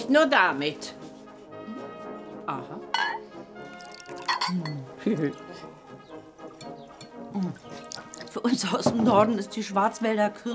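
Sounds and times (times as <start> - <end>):
speech: 0.1 - 1.0, 4.5 - 5.7, 7.4 - 7.7, 8.4 - 10.5
glassy clinks of a schnapps bottle: 2.9 - 4.9, 6.6 - 7.3
kirsch schnapps trickling from a bottle: 3.6 - 4.8, 7.0 - 8.4.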